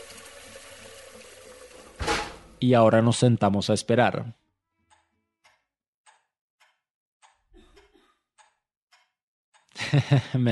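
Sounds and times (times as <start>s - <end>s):
water poured into a pot of rice: 0.0s - 2.1s
speech: 2.6s - 4.4s, 10.0s - 10.4s
laughter: 9.8s - 10.4s.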